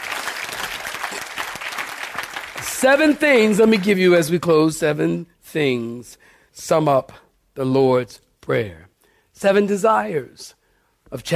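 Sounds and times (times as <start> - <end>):
audience clapping: 0.0 - 4.3
speech: 2.8 - 11.3.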